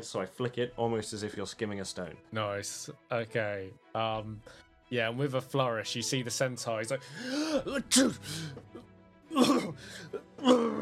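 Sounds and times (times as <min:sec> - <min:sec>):
speech: 0:00.0 - 0:10.7
person acting out coughing and sneezing: 0:07.4 - 0:10.7.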